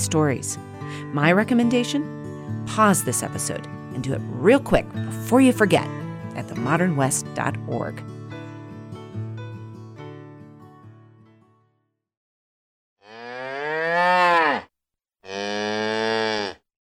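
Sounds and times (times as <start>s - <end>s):
speech: 0.0s - 8.2s
music: 0.0s - 12.1s
cow mooing: 13.0s - 16.6s.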